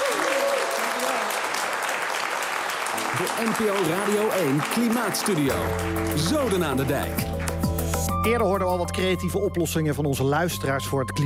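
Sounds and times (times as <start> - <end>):
audience applause for a band guest: 0.0 - 8.1
speech: 3.1 - 7.4, 8.2 - 11.2.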